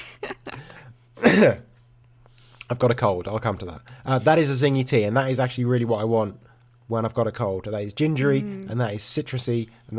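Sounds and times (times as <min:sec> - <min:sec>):
person clearing throat: 0:01.2 - 0:01.7
person coughing: 0:01.2 - 0:01.7
speech: 0:01.4 - 0:01.7, 0:02.7 - 0:09.9.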